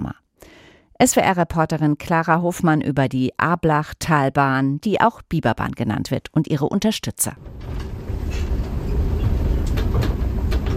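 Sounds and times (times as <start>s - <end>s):
speech: 1.0s - 7.9s
sharp clanks and clicks: 7.4s - 10.7s
train idling at the station in Stockach: 7.4s - 10.7s.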